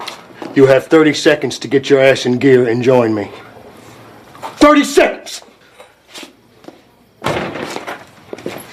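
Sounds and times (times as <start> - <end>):
speech: 0.5 - 3.5, 4.7 - 5.5
door slamming shut: 7.2 - 8.0.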